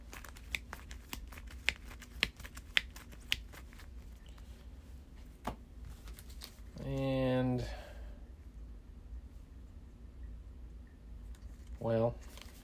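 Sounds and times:
deck of cards shuffling: 0:00.0 - 0:04.1, 0:05.9 - 0:06.8, 0:12.2 - 0:12.6
low steady hum: 0:00.0 - 0:12.6.

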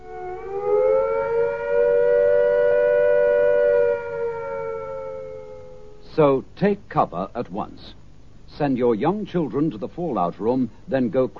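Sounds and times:
air raid attack warning siren wailing: 0:00.0 - 0:06.1
speech: 0:06.2 - 0:11.3.

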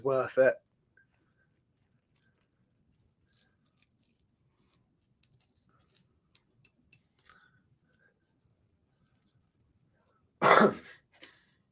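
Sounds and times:
speech: 0:00.0 - 0:00.6
harsh cough: 0:10.4 - 0:11.0.

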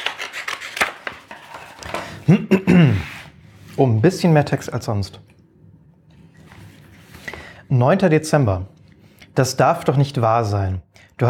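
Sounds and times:
sealed book page being cut open: 0:00.0 - 0:01.3
speech: 0:02.3 - 0:02.6, 0:03.8 - 0:05.3, 0:07.7 - 0:08.8, 0:09.4 - 0:11.2.

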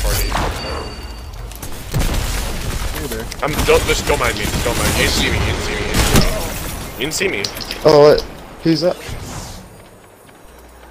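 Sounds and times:
steady video game noise: 0:00.0 - 0:10.8
grenade explosion in a video game: 0:01.6 - 0:07.3
speech: 0:03.3 - 0:09.2.

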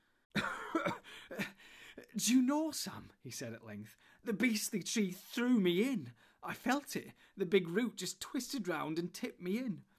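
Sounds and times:
narrator acting out coughing and spluttering: 0:00.4 - 0:01.1
speech: 0:02.2 - 0:09.9.

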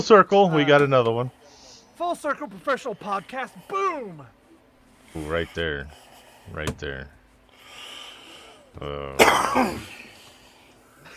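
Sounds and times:
speech: 0:00.0 - 0:01.4, 0:02.0 - 0:04.4, 0:05.1 - 0:07.2, 0:08.8 - 0:10.0
faint hum: 0:00.0 - 0:11.1
brief voiced throat sound: 0:08.8 - 0:10.1
loud cough into the microphone: 0:09.0 - 0:10.1.

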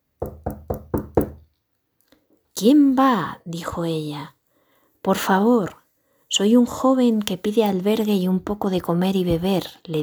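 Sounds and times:
knocking on the wooden door of a house: 0:00.2 - 0:01.5
speech: 0:02.6 - 0:04.4, 0:05.0 - 0:10.0.

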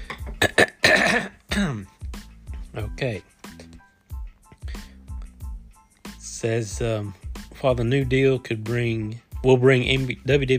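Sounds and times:
person coughing from allergies: 0:00.3 - 0:02.0
rough throat clear from allergies: 0:00.4 - 0:01.9
speech: 0:01.1 - 0:02.0, 0:02.8 - 0:03.3, 0:06.4 - 0:10.5.

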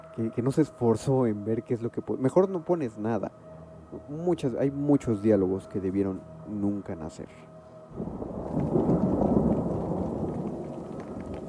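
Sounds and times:
speech: 0:00.2 - 0:08.7
deep roll of thunder rumbling: 0:07.9 - 0:11.4
steady hiss of rain with scattered pattering drops: 0:07.9 - 0:11.4.

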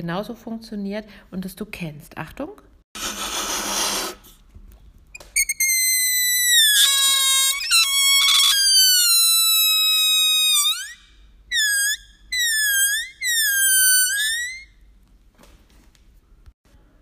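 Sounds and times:
speech: 0:00.0 - 0:02.7
air squealing from a stretched balloon neck: 0:03.0 - 0:04.4, 0:05.2 - 0:14.8.

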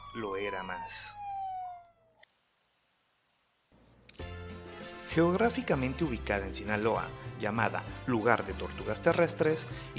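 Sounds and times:
ambulance siren wailing with a falling pitch: 0:00.0 - 0:02.1
speech: 0:00.2 - 0:01.2, 0:05.2 - 0:09.9.

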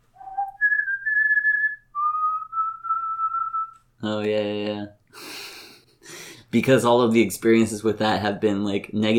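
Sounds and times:
slow eerie whistled tune: 0:00.2 - 0:03.8
speech: 0:04.0 - 0:09.1.

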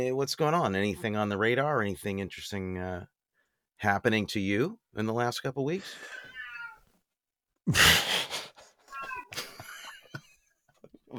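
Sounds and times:
speech: 0:00.0 - 0:03.2, 0:03.8 - 0:06.2, 0:07.7 - 0:08.1
cat meowing: 0:06.1 - 0:06.9, 0:08.9 - 0:09.5.

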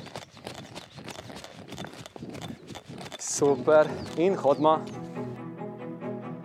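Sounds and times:
feet running in place during an exercise session: 0:00.0 - 0:05.2
speech: 0:03.4 - 0:05.0.

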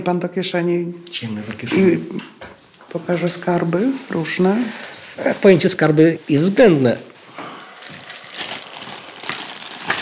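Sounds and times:
speech: 0:00.0 - 0:07.1
plastic bag rustling while being handled: 0:07.2 - 0:09.9.

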